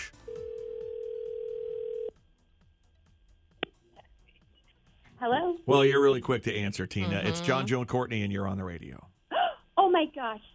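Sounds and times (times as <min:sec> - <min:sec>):
ringback tone on an outgoing phone call from a radio show: 0:00.3 - 0:02.1
speech: 0:05.2 - 0:09.1, 0:10.2 - 0:10.5.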